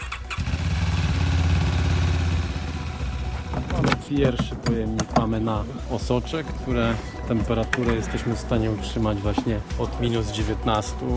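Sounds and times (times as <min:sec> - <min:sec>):
motorcycle ambulance engine starting and running: 0:00.0 - 0:03.8
speech: 0:04.1 - 0:11.1.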